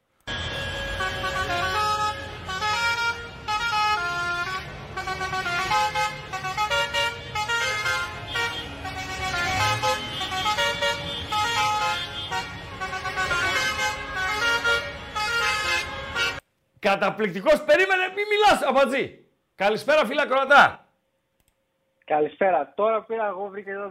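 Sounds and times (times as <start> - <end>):
loud musical car horn playing a melody of bright blaring notes: 0.2 - 16.4
speech: 16.9 - 20.8, 22.1 - 23.8.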